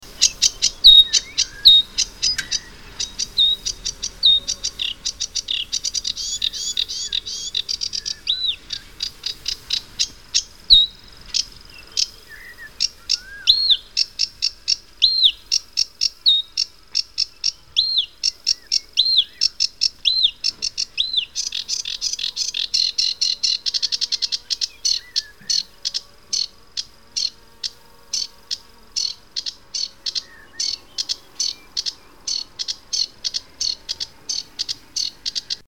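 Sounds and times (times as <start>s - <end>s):
Savi's warbler: 0.0s - 16.6s, 17.2s - 35.6s.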